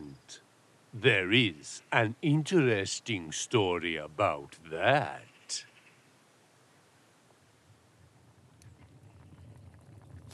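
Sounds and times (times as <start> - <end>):
speech: 0.3 - 5.7
water boiling in two big pans on a stove in a convent kitchen: 8.0 - 10.3.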